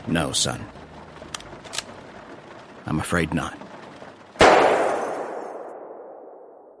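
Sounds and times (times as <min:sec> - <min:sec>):
rain pounding on a window: 0:00.0 - 0:04.4
speech: 0:00.1 - 0:00.8, 0:02.9 - 0:03.6
gunshot in an asylum ward: 0:04.4 - 0:06.7.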